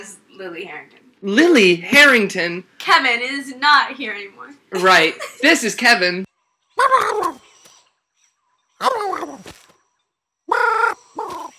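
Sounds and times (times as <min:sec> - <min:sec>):
speech: 0:00.4 - 0:07.4, 0:08.8 - 0:09.5
cartoon bird squawking in an inserted film clip: 0:06.8 - 0:07.4, 0:10.5 - 0:11.5.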